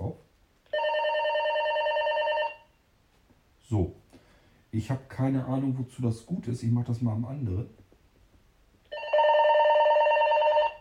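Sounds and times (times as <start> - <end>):
cordless telephone handset electronic ring tone: 0.7 - 2.6, 8.9 - 10.7
speech: 3.7 - 4.0, 4.7 - 7.8.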